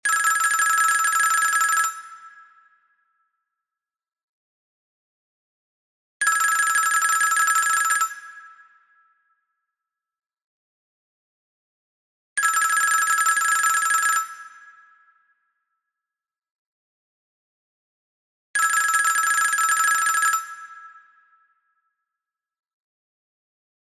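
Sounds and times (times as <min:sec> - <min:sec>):
American telephone: 0:00.1 - 0:02.0, 0:06.2 - 0:08.1, 0:12.4 - 0:14.3, 0:18.6 - 0:20.5.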